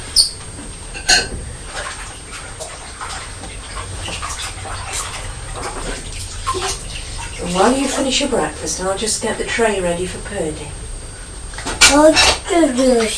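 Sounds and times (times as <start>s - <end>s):
running water while washing plates: 0.0s - 13.1s
crockery clinking as plates are washed: 1.0s - 1.4s
speech: 7.5s - 10.8s, 11.9s - 13.1s.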